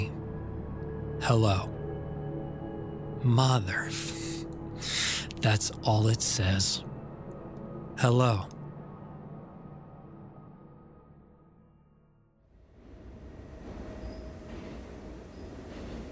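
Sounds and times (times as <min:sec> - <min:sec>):
speech: 0:01.2 - 0:01.8, 0:03.2 - 0:04.2, 0:04.8 - 0:06.9, 0:08.0 - 0:08.6
subway train rumbling in motion: 0:12.6 - 0:16.1.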